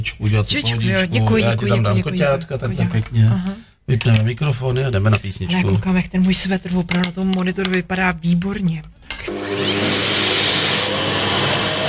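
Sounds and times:
speech: 0.0s - 10.1s
vacuum cleaner running: 9.2s - 11.8s.

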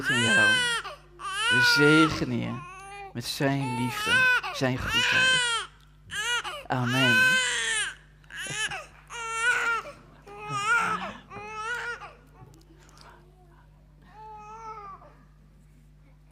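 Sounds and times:
speech: 0.0s - 0.8s, 1.5s - 5.7s, 6.7s - 7.6s
baby girl crying during baptism ceremony: 0.0s - 12.5s.

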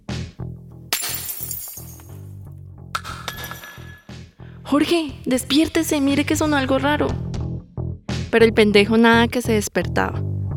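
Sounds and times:
glass shattering: 0.9s - 2.2s, 3.0s - 4.1s
scattered glass shards clinking and tinkling: 1.0s - 2.2s, 3.0s - 4.1s
speech: 4.7s - 7.2s, 8.3s - 10.3s.

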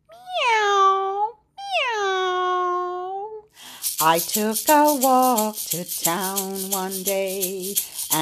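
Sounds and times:
cat meowing: 0.1s - 3.3s
speech: 4.0s - 8.2s.

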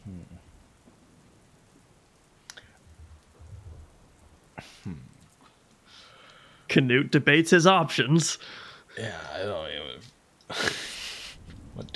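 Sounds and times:
steady rain: 0.0s - 11.9s
low rumbles of thunder from an approaching storm: 2.8s - 4.5s, 11.2s - 11.9s
speech: 4.6s - 5.1s, 6.7s - 10.8s.

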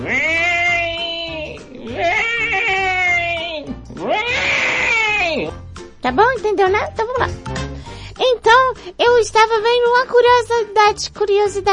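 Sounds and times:
cat meowing in a wailing tone: 0.0s - 5.6s
speech: 6.1s - 7.5s, 8.2s - 11.7s.

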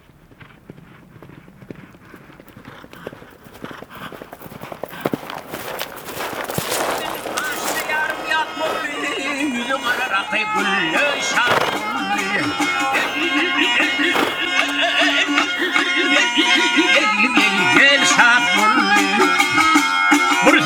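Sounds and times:
Turkmen horses' hooves clip-clopping: 0.0s - 20.6s
voices: 2.2s - 20.6s.

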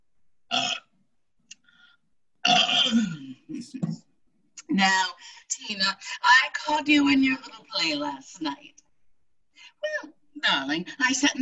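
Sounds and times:
person belching after gulping soda: 0.5s - 0.9s, 2.4s - 3.6s
speech: 2.9s - 4.0s, 4.7s - 8.8s, 9.8s - 11.4s.

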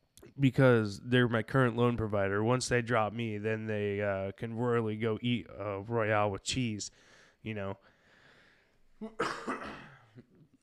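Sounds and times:
speech: 0.4s - 7.9s, 9.0s - 10.3s
person coughing: 9.0s - 10.5s.

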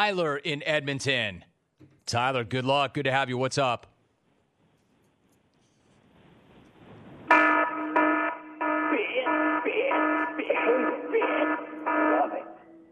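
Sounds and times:
speech: 0.0s - 1.5s, 2.1s - 3.9s
alarm bell ringing: 7.3s - 12.8s.

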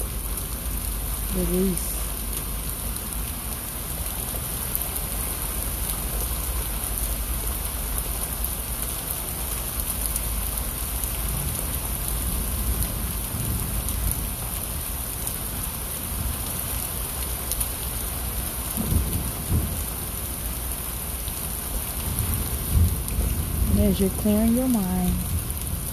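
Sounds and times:
steady dense rain falling: 0.0s - 25.9s
speech: 1.4s - 1.9s, 23.9s - 25.3s
low rumbles of thunder: 18.8s - 20.0s, 22.1s - 23.8s.

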